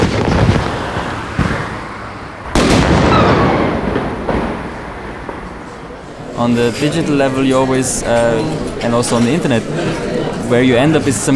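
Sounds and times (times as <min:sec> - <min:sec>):
booming explosions around Vienna Austria: 0:00.0 - 0:01.9, 0:02.5 - 0:06.1
loud rumbling background: 0:00.4 - 0:06.3
speech: 0:06.4 - 0:11.3.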